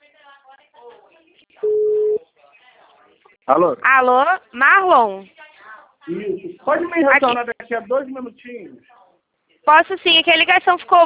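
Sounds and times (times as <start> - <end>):
telephone ringback tone on an outgoing call: 1.6 - 2.2
speech: 3.5 - 5.4, 6.1 - 9.0, 9.6 - 11.0.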